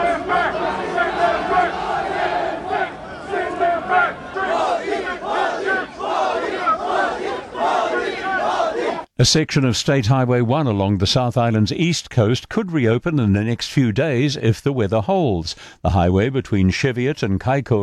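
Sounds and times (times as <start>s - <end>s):
large crowd of protesters chanting slogans in unison: 0.0s - 9.1s
speech: 9.2s - 17.8s.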